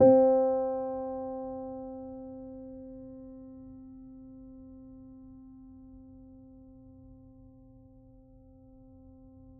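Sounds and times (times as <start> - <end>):
clean piano note C3: 0.0 - 3.6.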